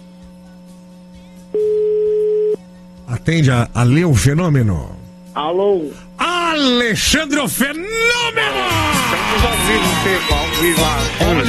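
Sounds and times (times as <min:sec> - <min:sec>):
faint constant hum: 0:00.0 - 0:11.4
telephone ringback tone on an outgoing call: 0:01.6 - 0:02.6
speech: 0:03.2 - 0:11.4.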